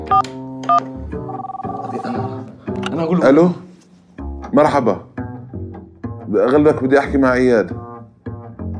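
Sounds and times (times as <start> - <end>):
phone keypad beeps from dialing: 0.0 - 2.0
speech: 0.1 - 3.6, 4.6 - 5.1, 6.3 - 7.8.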